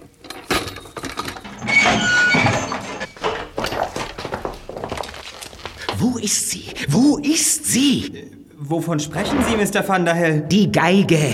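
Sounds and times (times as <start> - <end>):
loud scraping burst: 1.4 - 3.2
heavy footsteps approaching behind a cellar door: 2.4 - 6.9
speech: 6.1 - 11.3.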